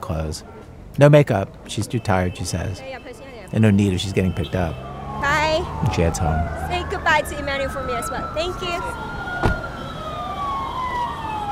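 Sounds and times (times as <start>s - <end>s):
steady traffic rumble: 0.0s - 11.4s
speech: 0.1s - 4.9s, 5.5s - 9.2s
police vehicle sirens wailing while passing on street: 1.8s - 11.4s
sharp thump: 9.4s - 9.6s.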